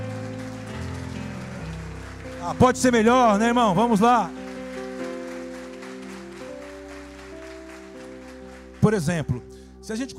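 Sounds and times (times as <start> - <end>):
audience applauding: 0.0 - 9.5
sustained keyboard chords: 0.0 - 10.1
speech: 2.4 - 4.4, 8.9 - 10.1.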